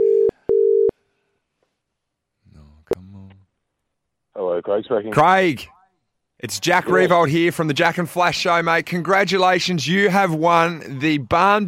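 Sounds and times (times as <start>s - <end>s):
telephone ringing tone heard down the line: 0.0s - 0.9s
speech: 4.6s - 5.8s, 6.4s - 11.6s.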